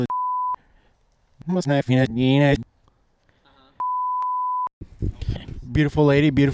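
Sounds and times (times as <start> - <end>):
loud steady censor beep: 0.0 - 0.6, 3.8 - 4.7
speech: 1.5 - 2.7, 5.8 - 6.5.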